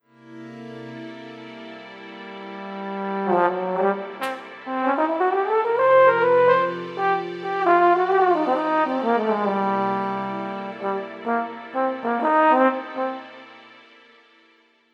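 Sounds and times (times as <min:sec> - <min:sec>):
tenor trombone: 0:02.6 - 0:13.8.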